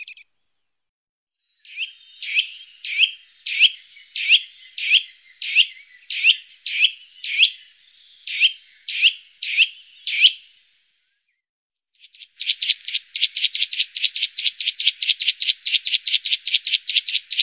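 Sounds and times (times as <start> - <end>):
Eurasian nuthatch whistling and trilling: 0.0 - 0.2, 1.4 - 10.4, 12.1 - 17.4.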